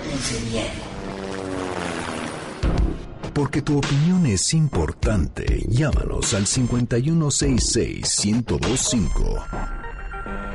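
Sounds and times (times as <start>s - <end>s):
helicopter engine droning with throbbing rotor: 0.0s - 3.2s
speech: 0.2s - 1.4s, 3.4s - 9.8s.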